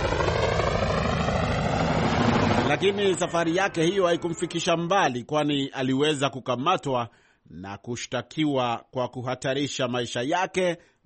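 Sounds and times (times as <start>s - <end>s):
departing helicopter rotor and engine roar: 0.0s - 4.6s
speech: 2.8s - 11.0s.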